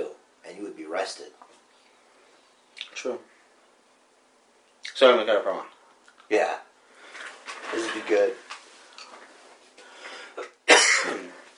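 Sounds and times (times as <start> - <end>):
speech: 1.0 - 1.4, 3.0 - 3.3, 5.0 - 5.7, 6.3 - 6.6, 7.7 - 8.4
person coughing close to the microphone: 10.4 - 11.4.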